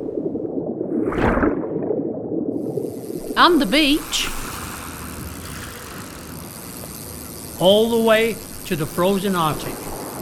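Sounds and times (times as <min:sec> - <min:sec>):
underwater bubbling and gurgling: 0:00.0 - 0:07.5
speech: 0:03.4 - 0:04.4, 0:07.6 - 0:09.9.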